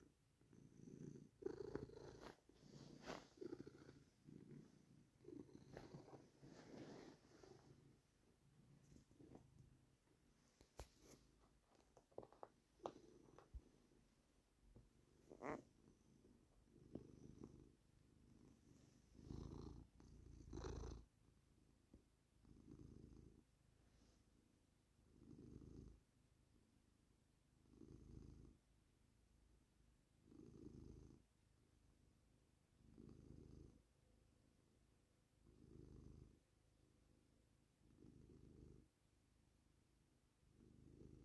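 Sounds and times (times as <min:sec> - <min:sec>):
cat purring: 0:00.0 - 0:26.8, 0:27.5 - 0:28.8, 0:30.2 - 0:31.4, 0:32.7 - 0:34.1, 0:35.3 - 0:39.1, 0:40.4 - 0:41.2
scratchy rustling: 0:01.8 - 0:04.9.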